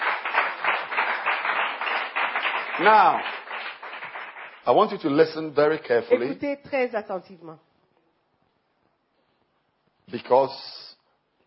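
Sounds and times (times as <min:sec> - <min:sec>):
church congregation clapping hands in worship: 0:00.0 - 0:05.2
speech: 0:02.8 - 0:03.4, 0:04.7 - 0:07.7, 0:10.1 - 0:10.8.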